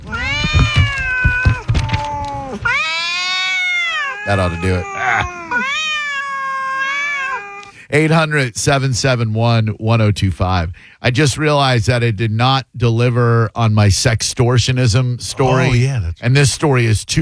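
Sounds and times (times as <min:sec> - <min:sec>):
several cats meowing and yowling: 0:00.0 - 0:07.8, 0:15.4 - 0:15.8
speech: 0:04.3 - 0:05.4, 0:07.9 - 0:17.2.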